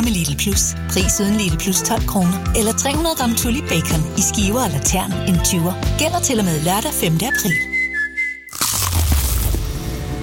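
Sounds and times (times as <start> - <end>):
speech: 0.1 - 7.7
teeth biting into a crispy chicken burger: 8.5 - 10.1.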